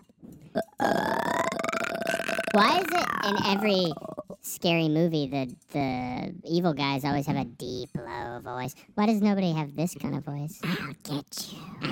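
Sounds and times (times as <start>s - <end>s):
long loud burp: 0.5s - 4.4s
speech: 2.6s - 11.9s.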